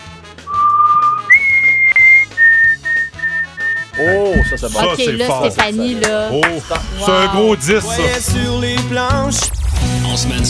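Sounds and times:
person whistling a short tune over a telephone line: 0:00.5 - 0:04.7
speech: 0:04.0 - 0:10.4.

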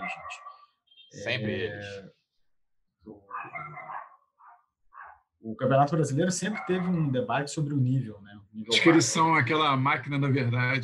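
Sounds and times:
dogs barking: 0:00.0 - 0:00.7, 0:03.3 - 0:05.3, 0:06.5 - 0:07.0
speech: 0:00.1 - 0:00.5, 0:01.1 - 0:02.2, 0:05.4 - 0:10.8.

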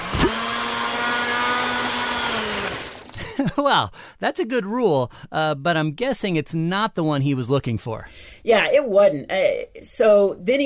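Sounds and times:
blender running at full speed: 0:00.0 - 0:03.2
speech: 0:03.4 - 0:10.6.

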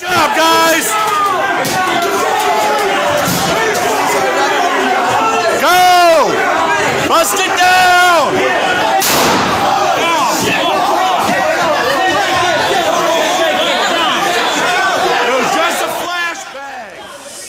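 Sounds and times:
loud agitated crowd shouting: 0:00.0 - 0:17.4
gunshot from a live bullet: 0:09.0 - 0:09.8.

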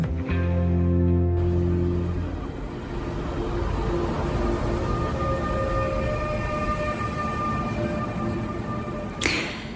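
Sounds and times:
train rolling into a station platform with a low rumble: 0:00.1 - 0:09.7
faint sustained whine of wheels or brakes: 0:01.4 - 0:09.7
brief tonal horn-like blast: 0:04.1 - 0:09.4.

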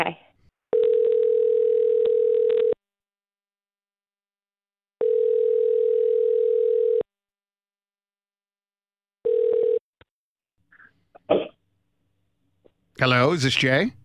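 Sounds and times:
speech: 0:00.0 - 0:00.2, 0:13.0 - 0:14.0
telephone line ringing tone on an outgoing call: 0:00.7 - 0:02.8, 0:05.0 - 0:07.1, 0:09.2 - 0:09.8
brief cough-like sound from the telephone line: 0:11.2 - 0:11.6.

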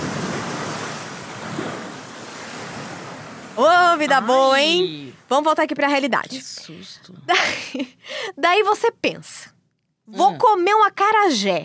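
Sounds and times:
surf washing onto a beach: 0:00.0 - 0:05.3
soft sea breeze rustle: 0:00.0 - 0:06.2
speech: 0:03.9 - 0:09.5, 0:10.1 - 0:11.6.

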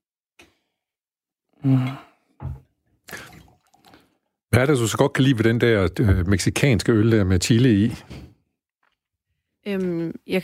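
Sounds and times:
speech: 0:01.6 - 0:02.0, 0:04.6 - 0:08.2, 0:09.7 - 0:10.4
water pouring out of a glass: 0:03.1 - 0:04.1.

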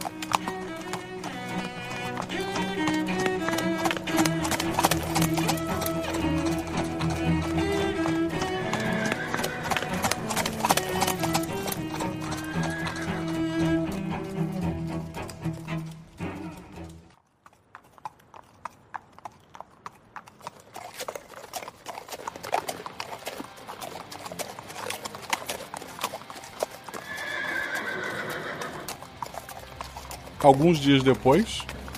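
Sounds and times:
horse neighing: 0:00.0 - 0:15.0, 0:26.8 - 0:29.3
horse hoofbeats galloping: 0:00.0 - 0:31.9
speech: 0:30.4 - 0:31.7.

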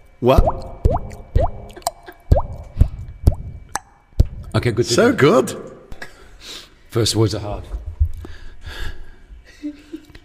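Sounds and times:
speech: 0:00.2 - 0:01.1, 0:04.6 - 0:05.7, 0:06.4 - 0:07.8
resonant water drop plops: 0:00.3 - 0:03.9.

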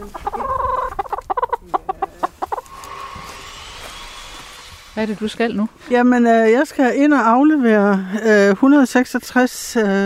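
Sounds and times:
small flock of hens clucking: 0:00.0 - 0:05.0
speech: 0:05.0 - 0:10.0.

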